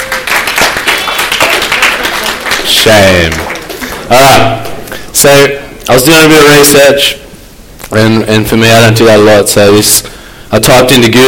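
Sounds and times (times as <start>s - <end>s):
small group clapping: 0.0s - 5.0s
speech: 2.8s - 3.5s, 4.1s - 7.2s, 7.9s - 11.2s.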